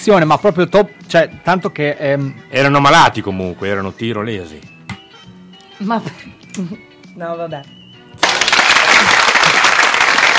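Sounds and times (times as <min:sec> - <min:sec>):
speech: 0:00.0 - 0:04.7, 0:05.8 - 0:07.8
applause of many hands clapping: 0:08.2 - 0:10.3.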